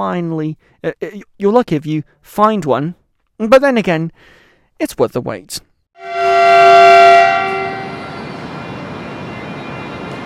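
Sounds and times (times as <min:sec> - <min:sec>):
speech: 0:00.0 - 0:06.1
rumbling rail noise of a passing train: 0:06.0 - 0:10.2
train horn in China: 0:06.0 - 0:10.2.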